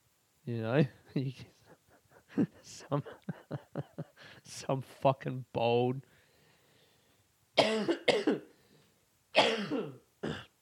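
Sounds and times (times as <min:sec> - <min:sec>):
speech: 0:00.5 - 0:01.6, 0:02.4 - 0:06.1
harsh raspy coughs: 0:07.6 - 0:08.5, 0:09.4 - 0:10.5.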